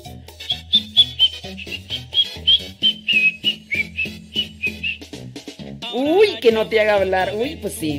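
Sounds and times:
person whistling a quick melody of short bright notes: 0.4s - 5.1s
speech: 6.0s - 7.9s.

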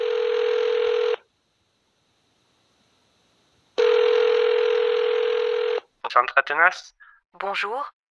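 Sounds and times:
telephone ringing with long buzzy tones: 0.0s - 1.2s, 3.8s - 5.9s
speech: 6.1s - 8.0s.

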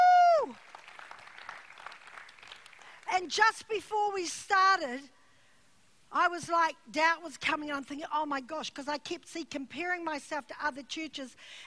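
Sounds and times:
audience clapping: 0.0s - 3.1s
speech: 3.2s - 5.2s, 6.1s - 11.6s.

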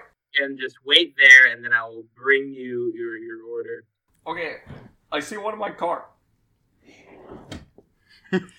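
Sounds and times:
speech: 0.4s - 6.1s, 8.3s - 8.5s
drawer opening or closing: 6.8s - 7.9s.

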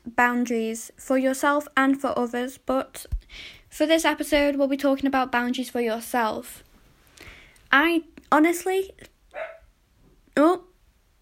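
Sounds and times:
speech: 0.2s - 6.7s, 7.7s - 9.5s, 10.4s - 10.7s
dogs barking outside at someone passing by: 9.3s - 9.7s.

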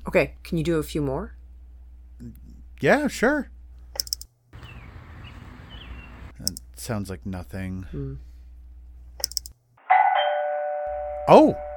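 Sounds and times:
speech: 0.1s - 1.4s, 2.2s - 3.5s, 6.4s - 8.3s, 11.3s - 11.7s
doorbell ringing in a house: 9.8s - 11.7s.

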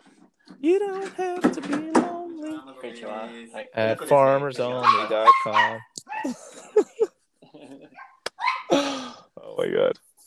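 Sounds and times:
speech: 0.6s - 6.6s, 9.6s - 10.0s
dog barking: 4.8s - 6.2s, 7.9s - 8.7s
laughter: 6.2s - 8.0s.

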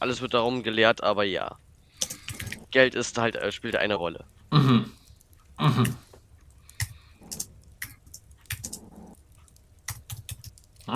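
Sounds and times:
speech: 0.0s - 1.6s, 2.7s - 5.0s, 5.6s - 6.0s
person typing notes on a keyboard: 1.9s - 2.7s, 5.1s - 10.9s.

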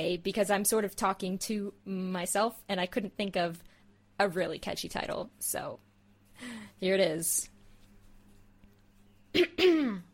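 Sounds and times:
speech: 0.0s - 7.5s, 9.3s - 10.1s
raspy throat clearing: 9.4s - 10.1s.

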